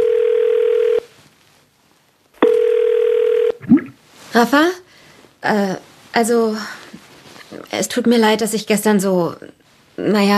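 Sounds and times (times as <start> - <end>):
telephone ringback tone heard by a caller placing a phone call: 0.0 - 1.1, 2.4 - 3.6
speech: 4.4 - 4.8, 5.4 - 6.8, 7.7 - 10.3.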